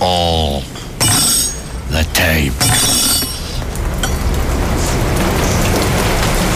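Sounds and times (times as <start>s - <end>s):
steady rain falling: 0.0s - 6.5s
low rumble: 1.6s - 6.5s.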